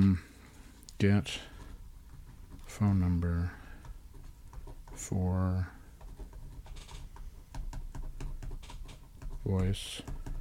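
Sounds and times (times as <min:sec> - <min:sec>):
speech: 0:01.0 - 0:01.5, 0:02.8 - 0:03.6, 0:05.0 - 0:05.8, 0:09.4 - 0:10.2
light tapping on a table: 0:07.1 - 0:10.4.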